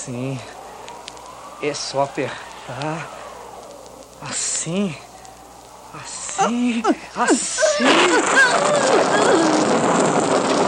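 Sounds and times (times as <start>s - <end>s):
speech: 0.0s - 0.6s, 1.6s - 3.2s, 4.2s - 5.1s, 5.9s - 10.6s
rain falling in the sertão: 0.0s - 10.6s.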